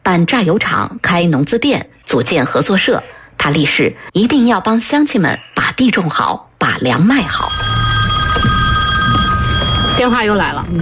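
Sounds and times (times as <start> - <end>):
speech: 0.1 - 7.7, 10.0 - 10.8
telephone ringing with bright electronic trill: 7.2 - 10.7.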